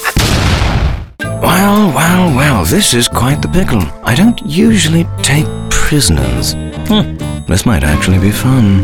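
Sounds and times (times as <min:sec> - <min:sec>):
bomb explosion with sustained roaring rumble: 0:00.1 - 0:01.2
speech: 0:02.1 - 0:08.8.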